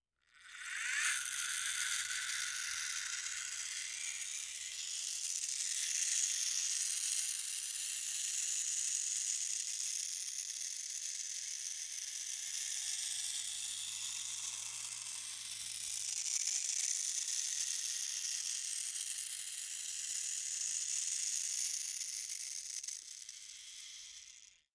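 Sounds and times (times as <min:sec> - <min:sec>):
clock motor: 0:00.4 - 0:24.6.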